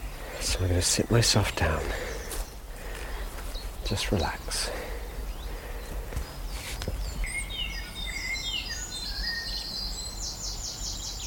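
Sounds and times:
soft rustling thuds: 0.0s - 7.4s
chiffchaff, blackcap, robin and dunnock singing in woodland: 0.0s - 11.2s
steady outdoor hum: 0.0s - 11.2s
speech: 0.5s - 2.1s, 3.9s - 4.8s.

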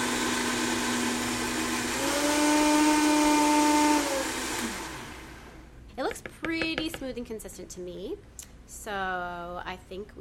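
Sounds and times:
high-powered blender motor whirring while mixing ingredients: 0.0s - 5.6s
speech: 7.2s - 10.1s.

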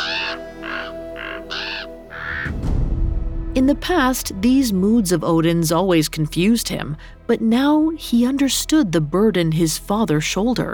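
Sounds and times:
ravens squawking: 0.0s - 2.5s
speech: 2.4s - 2.7s, 3.6s - 10.7s
low rumble: 2.4s - 8.5s.

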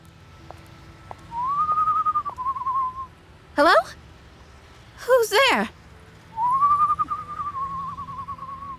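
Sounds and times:
low hum: 0.0s - 8.7s
person whistling a long steady note from a darkened alley: 1.3s - 3.1s, 6.4s - 8.7s
speech: 3.6s - 4.0s, 5.3s - 5.7s.

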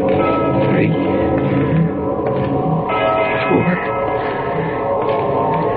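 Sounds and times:
deep church bell striking the hour: 0.1s - 5.7s.

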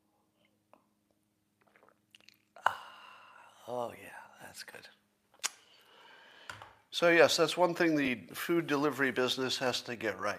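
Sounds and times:
faint wet mouth sounds: 1.6s - 3.0s
sipping coffee with a slurp: 1.6s - 3.5s
speech: 3.7s - 5.0s, 7.0s - 10.3s.

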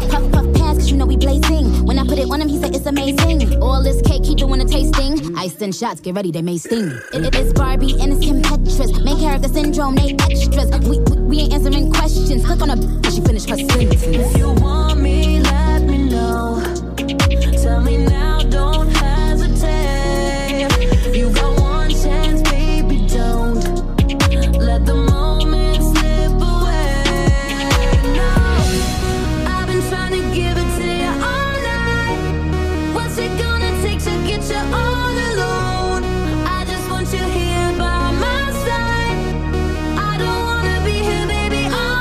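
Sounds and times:
pop-rap track: 0.0s - 42.0s
vocals: 0.0s - 42.0s
speech: 2.3s - 15.6s
layered synth melodies: 7.2s - 42.0s
heavy bass hits: 7.4s - 8.6s, 10.0s - 11.3s, 13.3s - 15.7s, 18.0s - 18.4s, 20.7s - 22.7s, 25.0s - 26.3s, 27.2s - 32.9s
punchy percussive beats: 10.0s - 10.5s, 13.1s - 14.9s, 20.5s - 21.8s, 24.0s - 24.5s, 27.1s - 31.8s.

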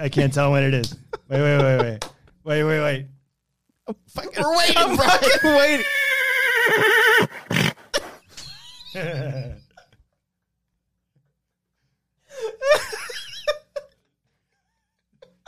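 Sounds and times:
laughter: 0.0s - 2.1s, 4.2s - 10.1s, 12.4s - 14.0s, 15.1s - 15.4s
speech: 0.0s - 3.2s, 3.9s - 6.0s, 6.7s - 7.5s, 8.9s - 9.6s
horse neighing: 5.5s - 8.0s
horse snarling snort: 7.2s - 8.1s.

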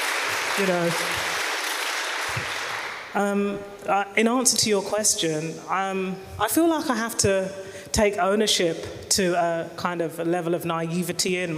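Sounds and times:
audience round of applause: 0.0s - 3.1s
speech: 0.6s - 1.4s, 2.3s - 11.5s.

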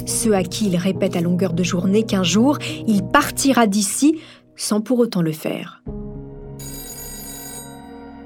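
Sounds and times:
speech: 0.1s - 6.0s
telephone bell ringing at a family home: 6.6s - 8.2s.

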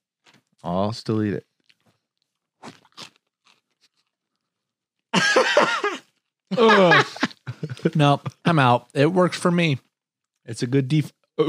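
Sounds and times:
speech: 0.6s - 1.5s, 6.6s - 7.1s, 7.8s - 11.4s
crunching popcorn with face in bowl: 1.5s - 4.4s
laughter: 5.2s - 8.6s
voiced sounds with a full mouth: 6.6s - 8.5s.

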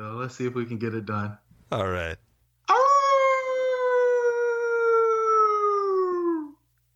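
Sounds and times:
speech: 0.2s - 2.8s
person imitating a hound dog howl: 2.7s - 6.6s.

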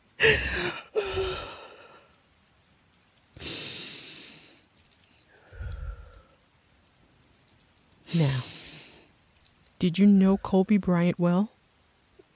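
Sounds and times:
person taking a deep breath with a long sighing exhale: 0.2s - 2.2s, 3.4s - 4.6s, 5.3s - 6.4s, 8.1s - 9.1s
speech: 8.1s - 8.6s, 9.8s - 11.6s.

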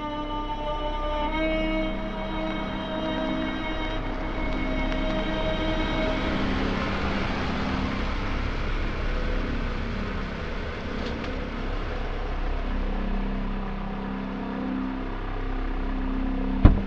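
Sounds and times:
car engine idling and rumbling: 0.0s - 16.8s
brief loud knock: 16.6s - 16.8s.

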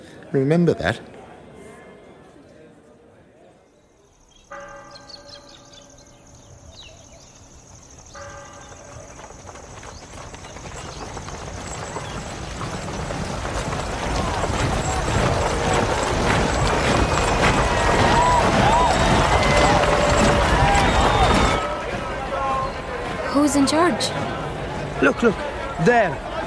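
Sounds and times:
crowd noise: 0.0s - 4.3s, 11.2s - 26.4s
speech: 0.3s - 1.2s, 25.2s - 26.3s
hooves of approaching riders and white horse pounding: 4.9s - 26.4s
voices shouting: 13.0s - 26.4s.

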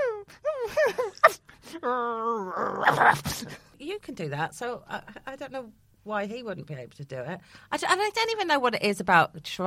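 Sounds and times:
person imitating dog whimpering yelps and howl: 0.0s - 3.4s
speech: 0.9s - 9.6s.

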